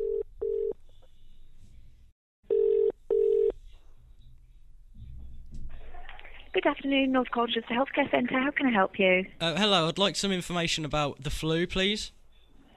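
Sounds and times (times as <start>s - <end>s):
telephone ringing tone in a double-ring pattern over the line: 0.0s - 0.8s, 2.5s - 3.5s
speech: 6.6s - 12.2s.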